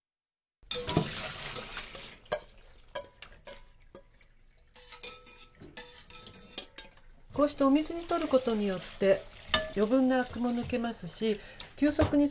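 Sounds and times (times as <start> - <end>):
metal utensil scraping and clinking against a pot while stirring spinach: 0.7 - 12.0
soft sloshing of reheated water with spinach: 0.7 - 12.2
speech: 7.4 - 12.2.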